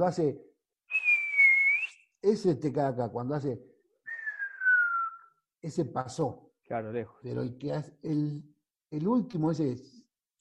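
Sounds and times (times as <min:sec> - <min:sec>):
speech: 0:00.0 - 0:00.5, 0:02.2 - 0:03.7, 0:05.6 - 0:10.0
person whistling imitating falling bomb whistle: 0:00.9 - 0:02.0, 0:04.1 - 0:05.3.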